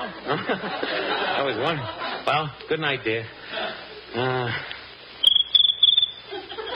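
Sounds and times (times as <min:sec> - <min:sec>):
laughter: 0:00.0 - 0:02.6, 0:03.3 - 0:04.7, 0:06.2 - 0:06.7
speech: 0:00.0 - 0:04.8
cricket chirping by rubbing its legs together: 0:05.2 - 0:06.7.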